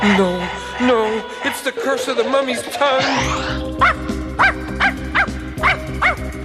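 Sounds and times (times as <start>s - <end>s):
speech: 0.1s - 4.5s
big bandaged dog barking: 3.8s - 6.3s.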